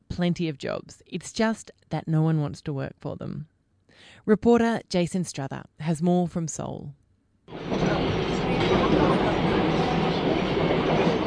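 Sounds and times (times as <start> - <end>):
speech: 0.2 - 7.0
subway train in Seoul rumbling along the rails: 7.5 - 11.2.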